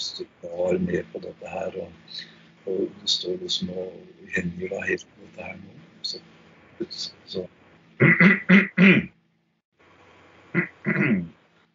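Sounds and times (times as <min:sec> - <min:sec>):
speech: 0:00.2 - 0:09.1, 0:10.6 - 0:11.3
person clearing throat: 0:08.0 - 0:09.1, 0:10.6 - 0:11.3.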